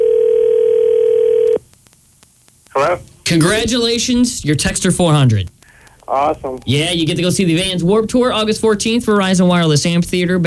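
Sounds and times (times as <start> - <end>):
telephone dial tone while placing a call: 0.0 - 1.6
speech: 2.8 - 10.4.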